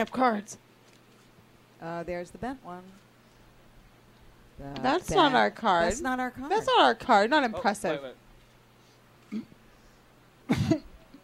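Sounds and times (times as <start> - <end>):
speech: 0.0 - 0.6, 1.8 - 3.0, 4.6 - 8.2, 9.3 - 9.5
throat noise: 9.2 - 9.6
person hacking cough: 9.3 - 9.5, 10.5 - 10.9.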